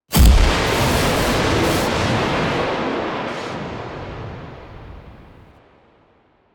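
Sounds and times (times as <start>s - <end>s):
loud cinematic impact: 0.1s - 5.2s.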